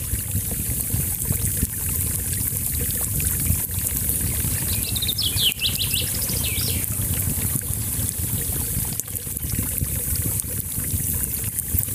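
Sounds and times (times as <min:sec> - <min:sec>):
small stream: 0:00.0 - 0:11.9
campfire: 0:00.3 - 0:11.9
chaffinches and green woodpecker: 0:04.6 - 0:07.0.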